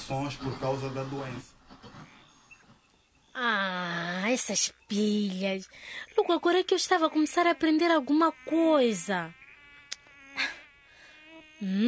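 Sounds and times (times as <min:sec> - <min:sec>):
speech: 0:00.1 - 0:01.6, 0:03.4 - 0:09.4, 0:11.6 - 0:11.8
malaria-carrying anopheles mosquitoes buzzing: 0:03.9 - 0:11.8.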